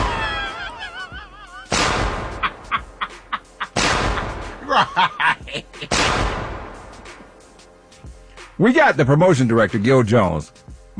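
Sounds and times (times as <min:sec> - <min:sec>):
people chuckling: 0:00.0 - 0:06.0
cannon shots: 0:01.7 - 0:03.0, 0:03.7 - 0:04.6, 0:05.9 - 0:07.1
speech: 0:08.6 - 0:10.9.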